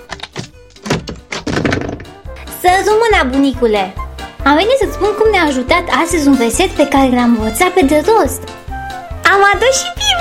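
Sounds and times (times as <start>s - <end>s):
wooden knocks and clunks of a door: 0.0s - 2.3s
speech: 2.6s - 8.6s, 9.3s - 10.2s.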